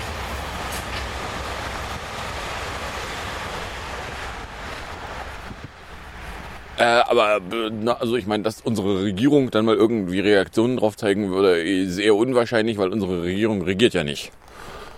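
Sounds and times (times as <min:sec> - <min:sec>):
subway train roaring past: 0:00.0 - 0:07.5
speech: 0:06.8 - 0:14.4.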